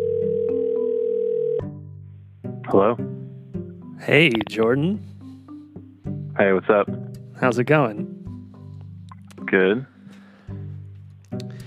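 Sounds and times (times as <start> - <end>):
phone line ringing on an outgoing call: 0.0 - 1.7
speech: 2.7 - 3.2, 4.0 - 5.1, 6.4 - 8.1, 9.5 - 9.9.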